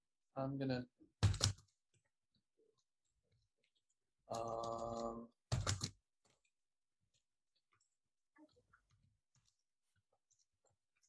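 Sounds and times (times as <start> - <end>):
speech: 0.4 - 1.0
typing on a computer keyboard: 1.2 - 1.8, 4.3 - 6.5.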